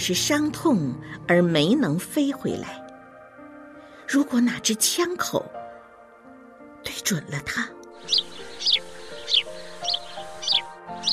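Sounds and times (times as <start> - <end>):
speech: 0.0 - 2.8, 4.1 - 5.6, 7.1 - 8.3
swallows chirping as they fly back to the nest: 8.0 - 11.1.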